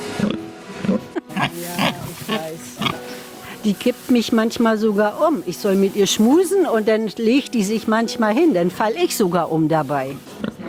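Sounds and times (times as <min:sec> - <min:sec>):
pigs grunting in a barn: 0:00.1 - 0:03.7
pigs squealing in a barn: 0:00.9 - 0:03.6
speech: 0:03.6 - 0:10.4.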